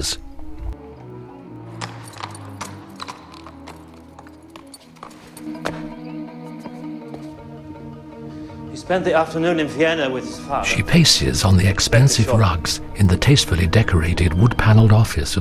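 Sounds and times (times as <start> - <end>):
speech: 0.0 - 0.3, 8.9 - 15.3
horse hooves clip-clopping on a hard courtyard surface: 0.8 - 6.0
faint clinks of horse tack: 1.8 - 5.9.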